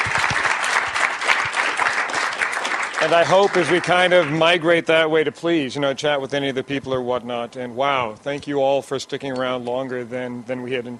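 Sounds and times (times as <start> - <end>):
audience applause at the close of a meeting: 0.0 - 4.6
speech: 3.0 - 10.9.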